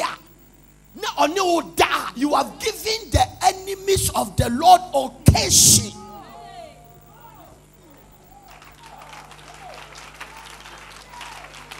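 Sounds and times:
speech: 0:01.2 - 0:06.0
audience clapping: 0:08.4 - 0:11.7.

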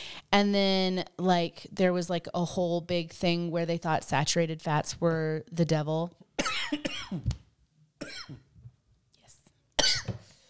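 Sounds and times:
speech: 0:00.3 - 0:07.4
person coughing after inhaling coffee: 0:06.4 - 0:07.4, 0:08.0 - 0:08.5, 0:09.8 - 0:10.2.

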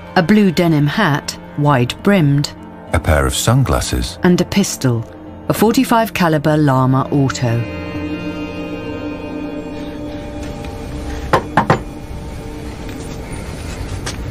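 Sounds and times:
speech: 0:00.2 - 0:08.2
knocking on a door: 0:11.3 - 0:11.9.

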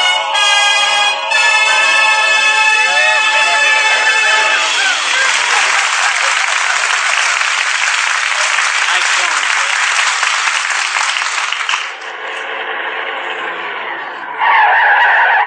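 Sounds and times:
laughter: 0:00.2 - 0:12.0
car brakes screeching as the car skids to a stop: 0:00.3 - 0:05.6, 0:12.2 - 0:15.4.

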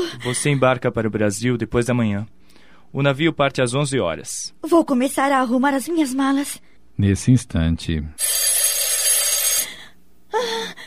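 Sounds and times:
speech: 0:00.1 - 0:08.6
telephone bell ringing: 0:08.2 - 0:09.8.

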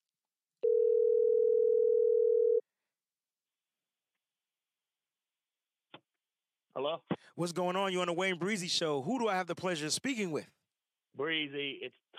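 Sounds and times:
telephone tone while calling a caller back: 0:00.6 - 0:02.7
speech: 0:06.8 - 0:10.6, 0:11.2 - 0:12.1.

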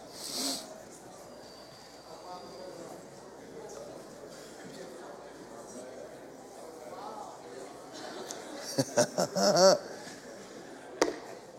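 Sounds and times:
audience chatting among themselves on a Sunday morning: 0:00.0 - 0:11.5
people chuckling: 0:08.3 - 0:10.4
sharp knock: 0:11.0 - 0:11.3.

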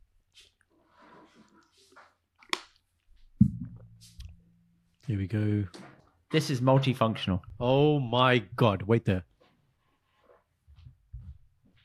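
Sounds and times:
person taking a swig of water: 0:00.4 - 0:04.4
speech: 0:05.1 - 0:09.3.

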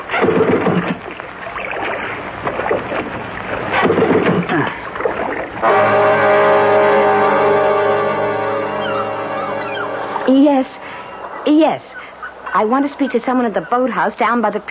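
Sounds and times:
water sloshing around a drifting motorboat: 0:00.0 - 0:06.3
stalled outboard motor restarting and droning: 0:05.6 - 0:10.3
speech: 0:12.6 - 0:14.6.

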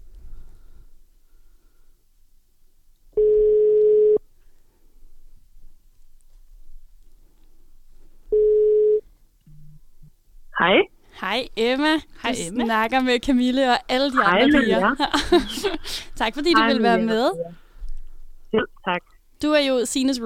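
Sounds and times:
ringback tone of an outgoing phone call: 0:03.2 - 0:04.2, 0:08.4 - 0:09.0
speech: 0:10.7 - 0:17.6, 0:18.5 - 0:20.2
person picking up the phone line and speaking: 0:12.2 - 0:12.9, 0:14.0 - 0:15.0, 0:16.4 - 0:17.6, 0:18.6 - 0:19.0
laughter: 0:14.2 - 0:17.4.

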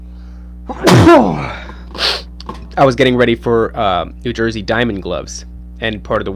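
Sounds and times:
speech: 0:00.7 - 0:02.1, 0:02.8 - 0:06.3
single loud sneeze: 0:00.7 - 0:02.4
sharp intake of breath: 0:01.3 - 0:02.3
brief sniff: 0:01.6 - 0:02.4.

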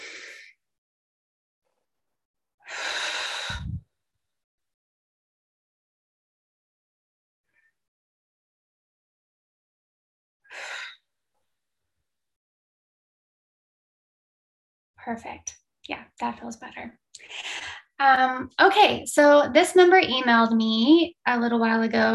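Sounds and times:
person inhaling through nose and exhaling through mouth: 0:00.0 - 0:00.5, 0:02.7 - 0:03.8
speech: 0:15.0 - 0:22.1.

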